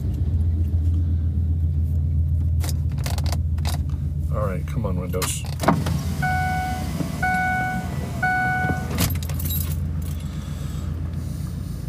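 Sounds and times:
car passing with steady low engine drone: 0.0 - 11.8
speech: 4.4 - 6.3
short evenly spaced horn-like beeps: 6.2 - 9.0.

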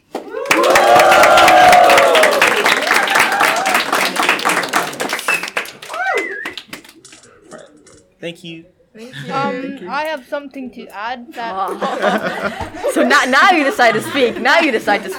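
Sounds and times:
live audience clapping: 0.0 - 7.3
people whooping: 0.2 - 7.0
speech: 8.2 - 15.1
laughter: 11.4 - 15.1.

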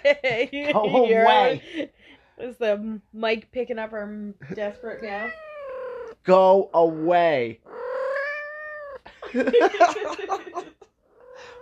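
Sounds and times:
burst of human laughter: 0.0 - 1.9, 9.1 - 10.8
speech: 0.0 - 5.5, 6.2 - 7.8, 9.2 - 10.9
cat in heat yowling in a long rising wail: 4.8 - 6.2, 7.7 - 9.0, 11.2 - 11.6.

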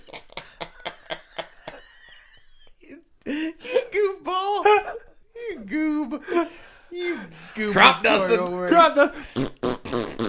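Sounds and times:
laughter: 0.0 - 5.0
speech: 7.6 - 9.4
voice blowing raspberries imitating fart noises: 9.2 - 10.2.

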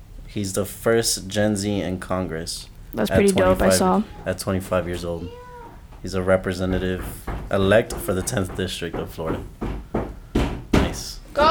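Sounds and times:
speech: 0.3 - 5.4, 6.0 - 9.6
knocking and banging on a door: 5.8 - 11.4.

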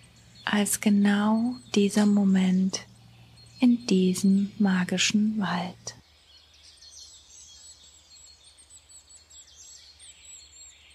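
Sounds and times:
low steady rumble: 0.0 - 6.0
birds singing and chirping in a forest: 0.0 - 10.9
speech: 0.5 - 2.9, 3.6 - 6.0.

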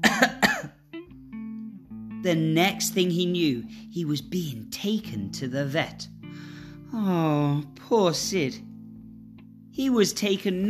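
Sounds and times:
person imitating a nasty hacking cough: 0.0 - 0.8
speech: 2.2 - 6.1, 6.9 - 8.7, 9.8 - 10.6.

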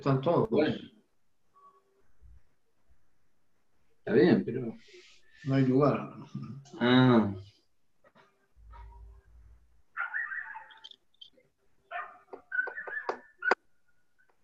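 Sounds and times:
speech: 0.0 - 1.0, 4.1 - 7.5
street dog barking outdoors: 9.9 - 10.8, 11.9 - 13.6.

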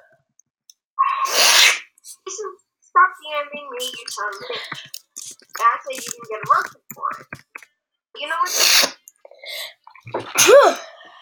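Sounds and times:
loud sneeze: 1.2 - 2.0, 8.5 - 9.0, 10.2 - 11.0
speech: 3.7 - 5.0, 5.6 - 7.4, 8.2 - 9.0, 10.1 - 10.9.

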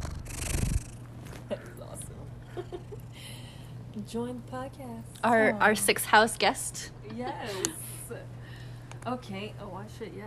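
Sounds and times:
male cat purring into the microphone: 0.0 - 3.2
speech: 4.0 - 8.4, 9.0 - 10.2.

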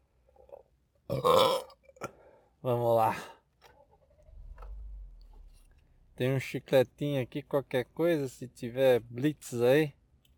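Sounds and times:
speech: 1.1 - 1.7, 2.6 - 3.4, 6.2 - 10.0
loud rough burp: 1.1 - 2.1.

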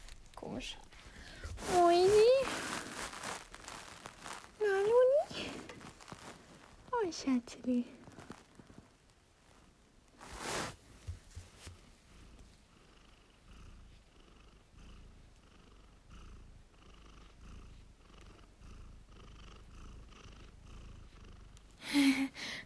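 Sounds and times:
rustling: 0.0 - 12.7
cat purring: 0.0 - 22.6
speech: 0.5 - 0.9, 7.1 - 8.0.

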